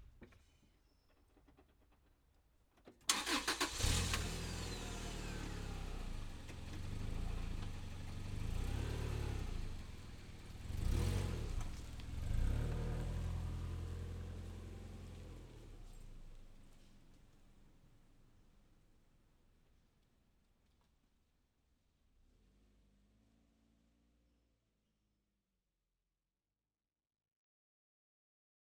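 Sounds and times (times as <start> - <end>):
car driving away: 3.1 - 18.3, 22.2 - 24.3.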